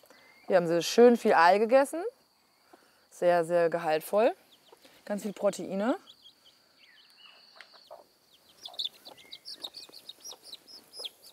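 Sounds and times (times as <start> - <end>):
speech: 0.5 - 2.2, 3.2 - 4.4, 5.1 - 6.1
hen clucking on a farm: 7.5 - 11.3.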